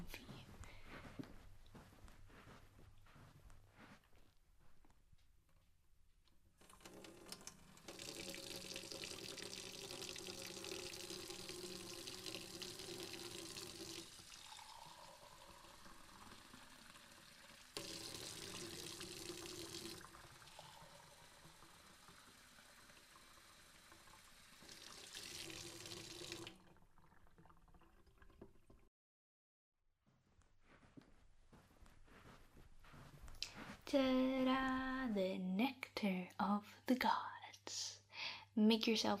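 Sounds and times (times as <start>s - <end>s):
water running from a tap: 6.6s - 28.9s
speech: 33.9s - 37.8s, 38.6s - 39.1s.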